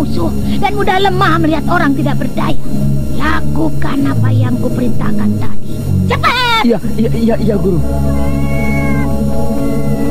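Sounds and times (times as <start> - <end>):
loud continuous low droning hum: 0.0 - 10.0
speech: 0.2 - 8.8
cat meowing: 8.1 - 10.0.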